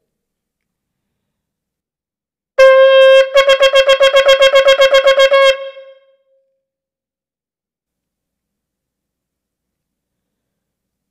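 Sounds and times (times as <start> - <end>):
shofar sounding a teruah alarm call: 2.6 - 6.2.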